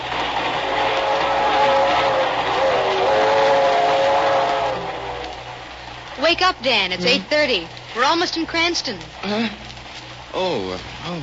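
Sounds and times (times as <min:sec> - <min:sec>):
train rolling along the rails toward Cranston in upper New York State: 0:00.0 - 0:07.7
speech: 0:06.3 - 0:09.7, 0:10.3 - 0:11.2.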